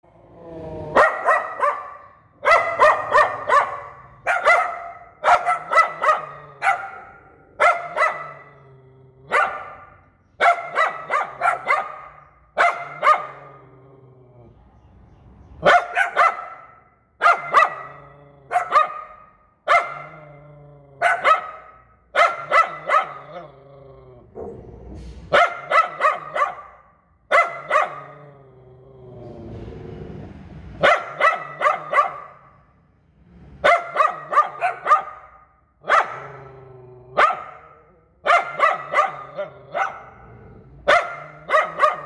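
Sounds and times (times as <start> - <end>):
poodle barking: 0.9 - 8.6, 9.2 - 13.7, 15.6 - 23.5, 25.3 - 28.4, 30.8 - 32.6, 33.6 - 42.0.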